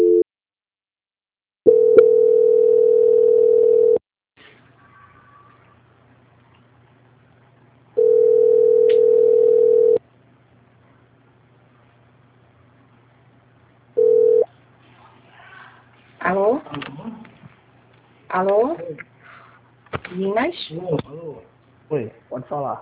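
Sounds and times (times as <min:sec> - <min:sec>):
telephone tones during a call transfer: 0:01.7 - 0:04.0, 0:08.0 - 0:10.0, 0:14.0 - 0:14.5
speech: 0:18.4 - 0:19.0, 0:20.2 - 0:21.2, 0:21.9 - 0:22.8.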